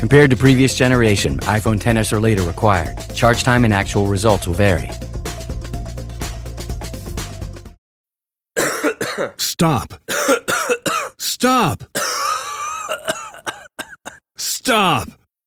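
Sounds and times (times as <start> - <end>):
speech: 0.0 - 5.1, 9.6 - 10.1, 11.4 - 12.1, 14.6 - 15.2
music: 0.0 - 7.8
throat clearing: 8.6 - 14.2
coughing: 8.6 - 15.2.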